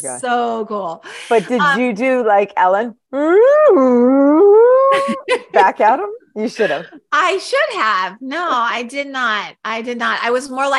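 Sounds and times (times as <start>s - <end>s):
speech: 0.0s - 10.7s
voice imitating a whale call: 3.1s - 5.3s
laughter: 4.8s - 6.0s.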